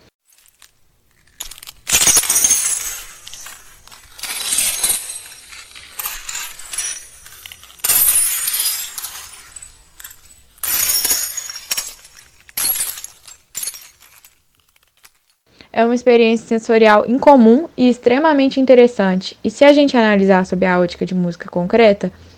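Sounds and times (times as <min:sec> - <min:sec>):
broken glass fragments tinkling: 0:00.2 - 0:15.4
footsteps crunching on broken glass shards: 0:00.2 - 0:15.4
speech: 0:15.8 - 0:22.3.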